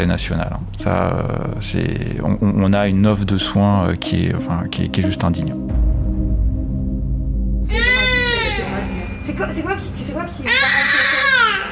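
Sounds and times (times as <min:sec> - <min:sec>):
speech: 0:00.0 - 0:05.8
low rumble: 0:00.0 - 0:11.6
baby girl crying: 0:07.7 - 0:09.0, 0:10.4 - 0:11.7.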